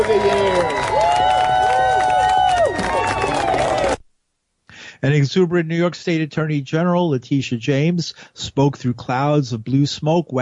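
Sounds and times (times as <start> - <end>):
speech: 0.0 - 1.2, 5.0 - 10.4
large crowd cheering and applauding: 0.0 - 4.0.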